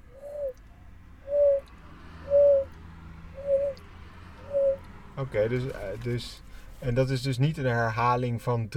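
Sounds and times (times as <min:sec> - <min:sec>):
stock dove cooing: 0:00.0 - 0:00.6, 0:01.2 - 0:02.7, 0:03.4 - 0:03.8, 0:04.4 - 0:04.8
faint hum: 0:00.0 - 0:08.7
speech: 0:05.2 - 0:08.7.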